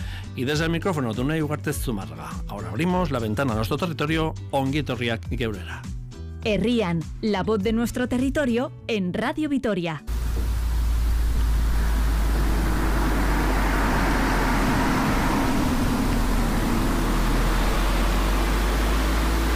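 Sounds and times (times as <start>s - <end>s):
speech: 0.4s - 10.1s
road traffic passing at village entrance: 10.1s - 19.5s.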